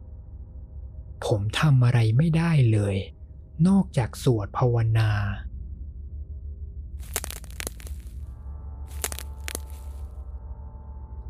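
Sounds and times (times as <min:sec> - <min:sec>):
speech: 0:01.2 - 0:05.5
footsteps snapping twigs: 0:07.0 - 0:08.2, 0:08.9 - 0:10.1.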